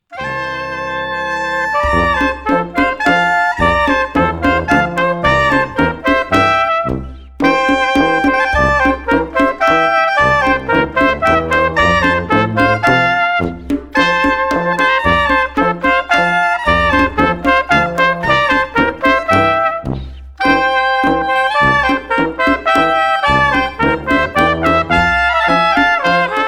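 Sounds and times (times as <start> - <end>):
orchestra playing: 0.1 - 26.4.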